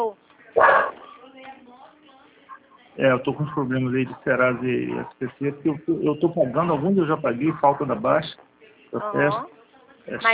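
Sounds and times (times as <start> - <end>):
speech: 0.0 - 0.2, 3.0 - 10.3
dog barking: 0.6 - 1.1.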